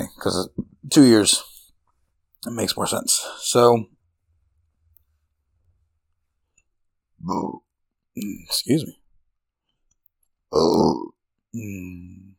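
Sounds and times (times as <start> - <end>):
speech: 0.2 - 1.5, 2.4 - 4.0, 7.2 - 7.6, 8.2 - 9.0, 10.5 - 12.2
low rough burp: 10.5 - 11.2.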